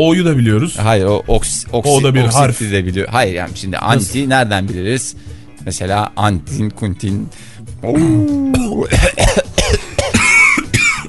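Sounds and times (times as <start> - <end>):
speech: 0.0 - 9.4
person coughing and choking after something caught in the throat: 7.9 - 11.0.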